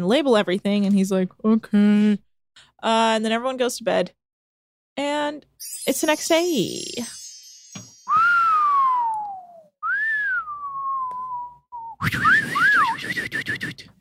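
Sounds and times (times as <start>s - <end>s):
speech: 0.0s - 4.2s, 5.0s - 7.2s
person whistling clear sliding notes: 8.0s - 13.9s.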